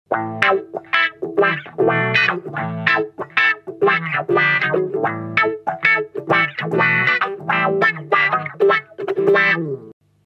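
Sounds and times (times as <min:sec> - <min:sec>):
wah wah effect: 0:00.1 - 0:10.0.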